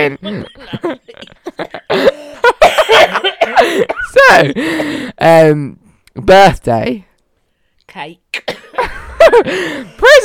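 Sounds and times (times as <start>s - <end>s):
speech: 0.0s - 1.3s, 4.3s - 7.1s, 8.0s - 8.6s, 9.2s - 10.2s
person laughing: 0.0s - 4.7s
harsh coughs: 1.9s - 4.2s, 8.4s - 8.9s
breathy voiced gasps: 4.6s - 5.2s, 9.5s - 10.0s.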